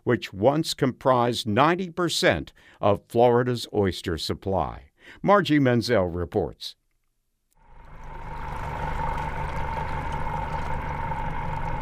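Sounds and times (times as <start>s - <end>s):
speech: 0.1s - 6.8s
boat motor droning on Apalachicola Bay, Florida, heading to an oyster farm: 7.6s - 11.8s.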